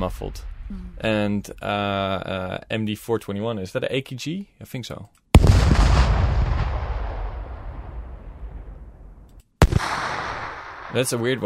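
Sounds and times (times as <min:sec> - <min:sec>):
second explosion blast: 0:00.0 - 0:02.0, 0:05.4 - 0:11.4
explosion with deep rumbling decay: 0:00.0 - 0:02.2, 0:05.4 - 0:11.0
speech: 0:00.0 - 0:05.8, 0:10.9 - 0:11.4.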